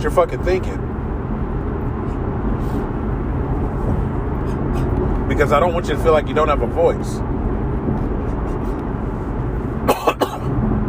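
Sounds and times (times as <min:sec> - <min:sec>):
speech: 0:00.0 - 0:00.8, 0:05.3 - 0:07.3
steady low rumble: 0:00.0 - 0:10.8
sharp coughs from allergies: 0:09.8 - 0:10.6.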